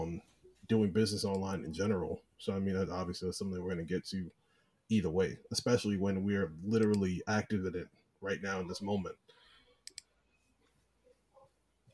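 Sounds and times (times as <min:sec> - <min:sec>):
speech: 0:00.7 - 0:09.4
computer mouse clicks while searching online: 0:06.8 - 0:07.1, 0:09.8 - 0:10.1.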